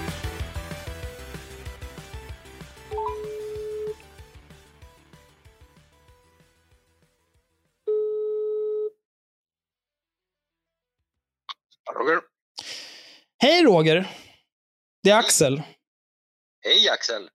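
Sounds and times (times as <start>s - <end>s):
telephone ringing tone of an outgoing call: 2.9s - 4.0s, 7.9s - 9.0s
speech: 12.0s - 12.3s, 13.4s - 14.2s, 15.0s - 15.8s, 16.6s - 17.3s.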